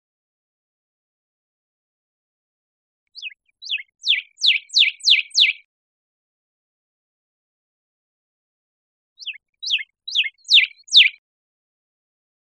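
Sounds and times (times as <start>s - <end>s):
Northern cardinal singing downslurred whistles: 3.7s - 5.6s, 9.7s - 11.2s.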